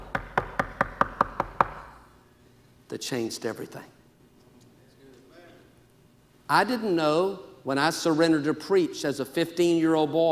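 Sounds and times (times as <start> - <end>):
knocking on a door: 0.0 - 1.9
speech: 2.9 - 4.0, 6.5 - 10.3.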